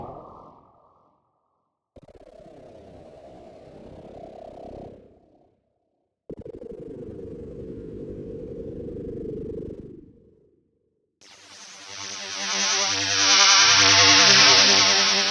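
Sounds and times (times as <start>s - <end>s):
spooky synth: 11.4s - 15.2s.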